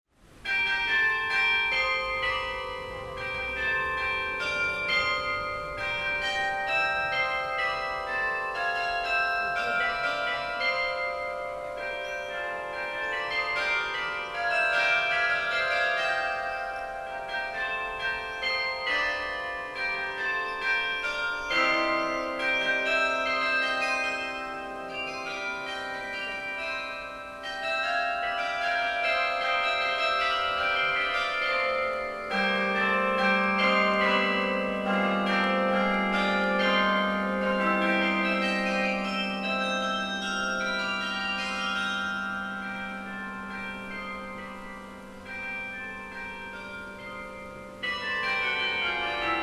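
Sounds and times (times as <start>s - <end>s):
carillon concert: 0.4s - 49.4s.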